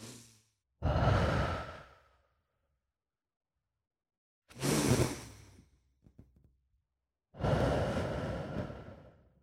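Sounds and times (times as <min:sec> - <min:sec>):
deep breaths with long breathy exhales: 0:00.8 - 0:02.3, 0:07.4 - 0:09.3.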